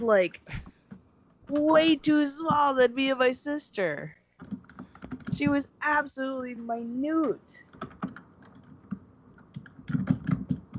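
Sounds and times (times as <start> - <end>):
speech: 0.0 - 0.7, 1.5 - 4.6, 5.4 - 7.6
typing on a computer keyboard: 4.4 - 5.6, 7.6 - 10.7.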